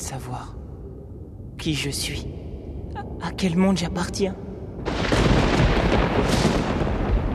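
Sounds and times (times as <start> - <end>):
speech: 0.1 - 0.6, 1.6 - 5.1
thunderclap from a lightning strike: 4.8 - 7.3.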